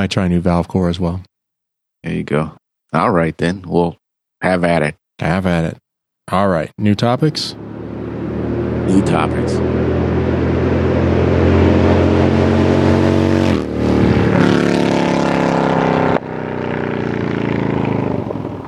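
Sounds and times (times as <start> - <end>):
speech: 0.0 - 1.3, 2.0 - 7.7, 8.9 - 10.0
Harley-Davidson motorcycle engine rumbling with deep throaty exhaust: 7.0 - 18.6.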